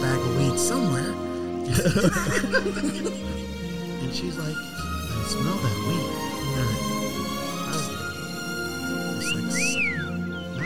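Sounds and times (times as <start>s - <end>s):
dense steady background of music-like tones: 0.0s - 10.6s
speech: 0.6s - 1.1s, 1.7s - 6.9s
laughter: 1.7s - 3.4s
person whistling a tune: 9.2s - 10.6s.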